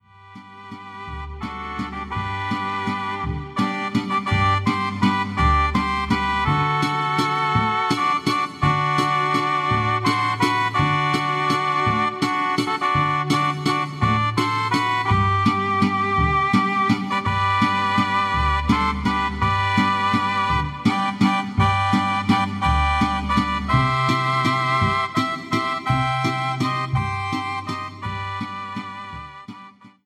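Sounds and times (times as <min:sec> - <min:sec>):
mariachi music: 0:00.0 - 0:30.0.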